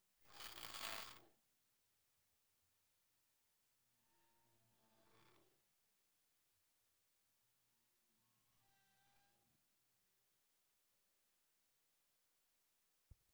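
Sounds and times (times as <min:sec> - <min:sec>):
arcade claw machine going left: 0:00.4 - 0:01.1.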